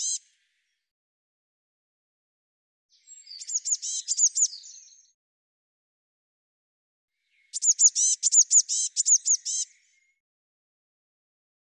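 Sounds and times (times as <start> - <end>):
Eurasian blue tit calls: 0.0 - 0.2, 3.4 - 4.8, 7.5 - 9.8.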